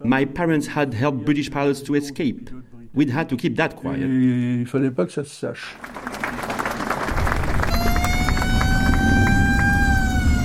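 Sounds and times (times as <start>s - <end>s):
speech: 0.0s - 6.1s
crowd noise at liberation ceremonies: 5.8s - 10.4s
old American army jeeps engine rumble in a convoy driving past: 7.1s - 10.4s
sustained horn-like tone: 7.5s - 10.4s.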